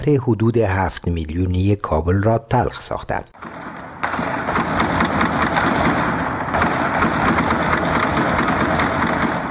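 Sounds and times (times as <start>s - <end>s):
speech: 0.0s - 3.6s
gunfire echoing through a city at night: 3.4s - 9.4s.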